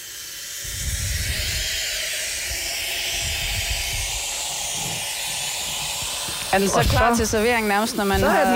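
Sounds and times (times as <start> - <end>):
boiling water pouring from a boiling-water tap into a glass French press: 0.0 - 8.5
low gurgling as the French press fills: 0.2 - 8.5
speech: 6.5 - 8.5.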